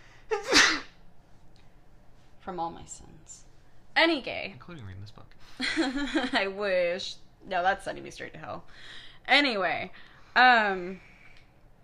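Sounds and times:
sneeze: 0.3s - 1.0s
speech: 2.4s - 11.1s.

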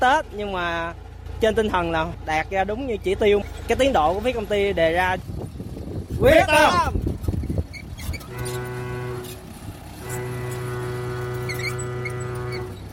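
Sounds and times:
speech: 0.0s - 5.4s, 6.2s - 7.1s
construction site horn blasts signalling work start: 8.0s - 12.9s.

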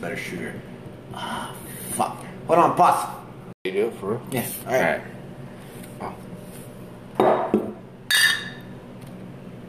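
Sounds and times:
speech: 0.0s - 5.2s, 6.0s - 6.2s
glasses clinking together in a toast: 8.1s - 8.7s.

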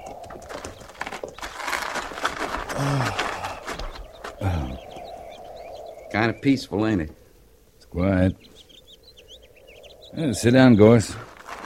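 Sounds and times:
saddled horses' hooves clopping while led to a stream: 0.0s - 4.4s
animal sounds: 0.0s - 11.6s
speech: 2.8s - 3.2s, 6.2s - 7.2s, 8.0s - 8.5s, 10.2s - 11.2s.

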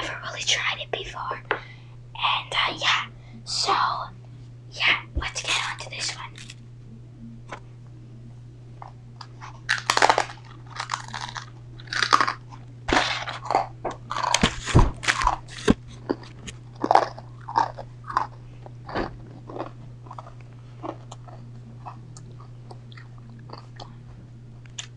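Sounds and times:
low hum: 0.0s - 24.9s
speech: 0.3s - 1.5s
dry brittle Melba toast cracker bitten and chewed: 5.5s - 6.6s, 8.8s - 24.0s.

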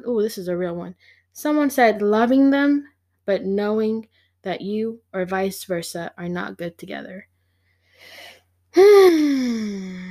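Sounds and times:
speech: 0.0s - 7.3s, 8.0s - 10.0s
deep voiced inhale: 7.4s - 8.5s, 9.1s - 10.0s.

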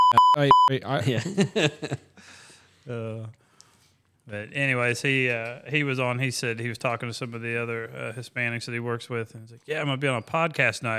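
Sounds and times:
loud flat censor bleep: 0.0s - 0.7s
speech: 0.1s - 3.4s, 4.3s - 10.9s
laughter: 1.0s - 2.1s.

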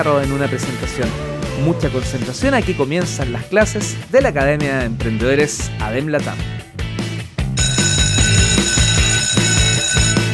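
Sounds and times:
speech: 0.0s - 6.7s
loud bell ringing: 7.6s - 10.3s.

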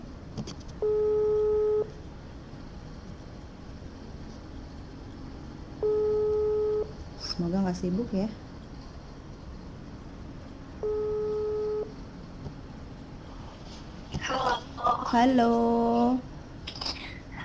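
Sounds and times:
telephone ringing tone of an outgoing call through a phone line: 0.8s - 1.9s, 5.8s - 6.9s, 10.8s - 11.9s
speech: 7.4s - 8.4s, 15.1s - 16.3s.

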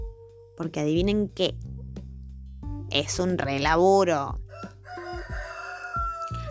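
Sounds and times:
speech: 0.6s - 1.7s, 2.9s - 4.7s
rooster crowing: 4.5s - 6.4s.

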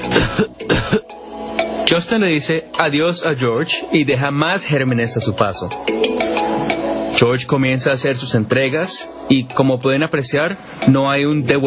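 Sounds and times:
person coughing: 0.0s - 1.2s
speech: 1.9s - 6.4s, 7.2s - 11.6s.

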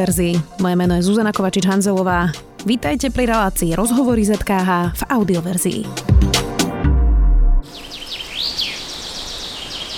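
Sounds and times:
speech: 0.0s - 6.4s
birds chirping in a Slovak forest: 7.7s - 9.9s.

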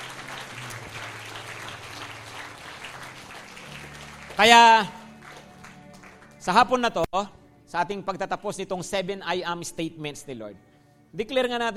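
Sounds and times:
church congregation applauding: 0.0s - 6.9s
speech: 4.4s - 5.0s, 6.4s - 11.7s.

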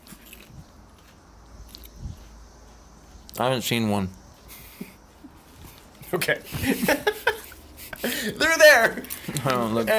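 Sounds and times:
chewing popcorn: 0.0s - 2.4s
speech: 3.4s - 4.2s, 6.1s - 7.3s, 8.2s - 9.9s
laughter: 6.5s - 9.1s.

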